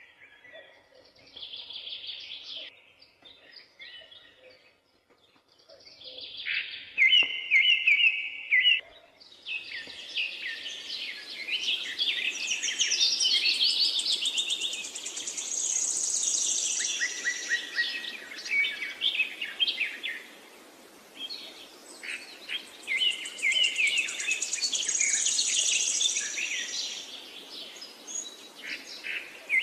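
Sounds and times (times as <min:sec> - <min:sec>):
birds singing in a forest: 0:00.0 - 0:29.6
soft steady hiss: 0:09.2 - 0:29.6.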